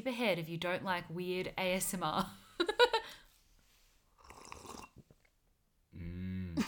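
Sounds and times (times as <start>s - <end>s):
speech: 0.0s - 2.4s
wet slurp of hot peppermint tea: 4.2s - 5.1s
brief vocal sound: 5.9s - 6.6s.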